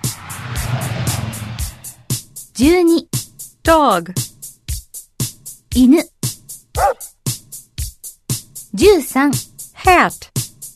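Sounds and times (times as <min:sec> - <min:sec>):
car engine droning: 0:00.0 - 0:02.2
speech: 0:02.6 - 0:04.3, 0:05.8 - 0:06.1, 0:08.7 - 0:10.4.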